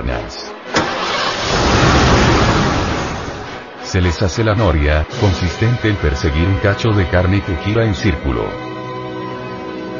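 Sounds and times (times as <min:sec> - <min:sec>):
speech: 0:00.0 - 0:01.7, 0:03.9 - 0:08.7
car engine cranking and starting: 0:00.7 - 0:03.7.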